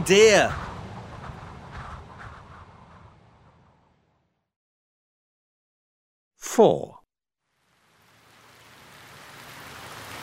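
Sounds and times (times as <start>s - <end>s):
speech: 0.0s - 0.6s, 6.6s - 7.0s
steady rain in cold weather: 0.0s - 1.6s, 7.5s - 10.2s.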